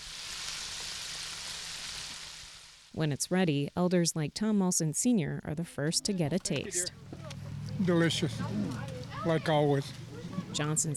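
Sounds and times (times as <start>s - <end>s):
flour-coated bluegill and crappie fish sizzling as they fry: 0.0s - 3.8s
speech: 3.0s - 7.2s, 7.8s - 10.9s.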